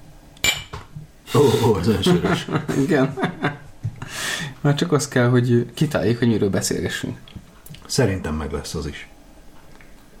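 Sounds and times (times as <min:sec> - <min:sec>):
glasses clinking in a toast: 0:00.4 - 0:00.9
speech: 0:01.3 - 0:03.6, 0:04.6 - 0:07.3, 0:07.9 - 0:09.1
laughter: 0:01.4 - 0:03.7.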